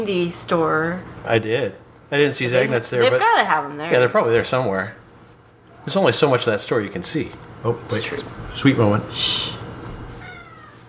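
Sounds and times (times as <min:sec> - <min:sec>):
speech: 0:00.0 - 0:05.0, 0:05.8 - 0:09.6
faint hum: 0:00.0 - 0:10.8
cat meowing: 0:10.2 - 0:10.8.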